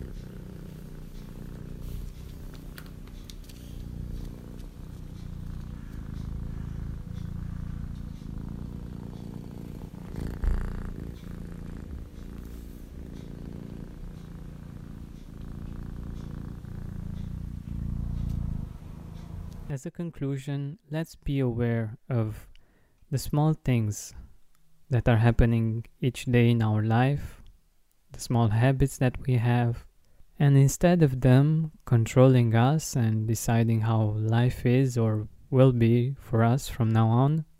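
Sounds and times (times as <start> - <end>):
cat purring: 0.0 - 19.7
speech: 19.7 - 22.5, 23.1 - 24.2, 24.9 - 27.4, 28.1 - 37.5.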